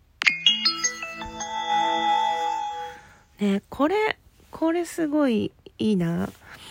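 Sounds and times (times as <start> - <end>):
electronic train chime from a phone app: 0.3 - 3.4
speech: 3.4 - 6.4.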